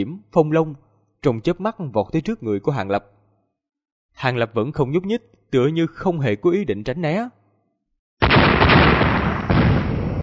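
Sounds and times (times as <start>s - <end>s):
speech: 0.0s - 3.2s, 4.2s - 7.4s
explosion sound effect: 8.2s - 10.2s.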